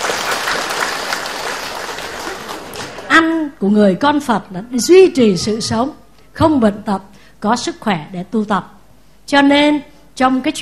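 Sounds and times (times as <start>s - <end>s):
audience applause: 0.0s - 3.1s
speech: 3.2s - 10.6s.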